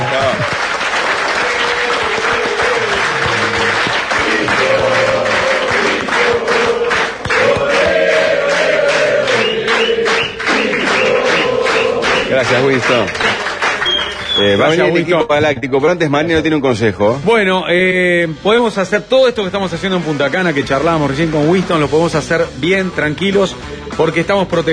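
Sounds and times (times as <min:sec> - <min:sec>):
crowd cheering and shouting: 0:00.0 - 0:13.2
large audience applause for an entertainer in Punta Cana: 0:00.0 - 0:14.8
speech: 0:12.6 - 0:13.4, 0:14.4 - 0:24.7.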